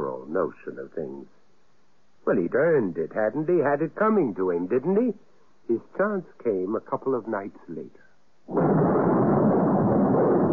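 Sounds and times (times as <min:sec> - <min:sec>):
speech: 0:00.2 - 0:01.4, 0:02.2 - 0:08.9
storm roaring as a loud steady broad noise: 0:08.5 - 0:10.5.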